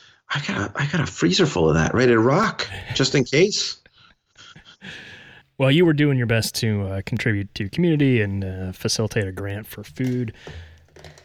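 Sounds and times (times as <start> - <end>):
speech: 0.3 - 3.8, 4.8 - 11.1
small plastic object like a highlighter pen clattering on a desk: 9.9 - 11.2.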